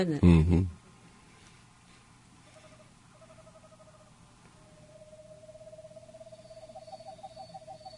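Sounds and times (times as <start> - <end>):
speech: 0.0 - 0.8
low hum: 0.0 - 7.9
Pacific screech owl calling with whistled trill and hoots: 2.5 - 7.9.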